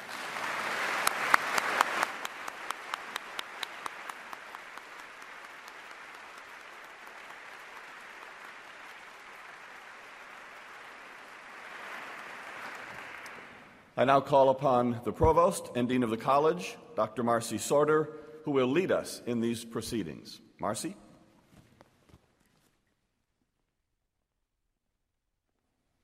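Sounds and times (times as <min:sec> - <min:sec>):
audience applause: 0:00.0 - 0:13.8
speech: 0:14.0 - 0:21.0.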